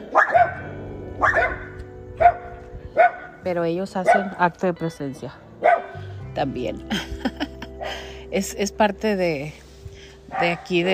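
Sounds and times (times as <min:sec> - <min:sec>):
small pet dogs barking on an outdoor terrace: 0:00.0 - 0:03.4, 0:04.0 - 0:04.5, 0:05.6 - 0:06.0
speech: 0:03.4 - 0:05.4, 0:06.4 - 0:07.3, 0:08.3 - 0:09.6, 0:10.3 - 0:10.9
laughter: 0:06.9 - 0:08.0.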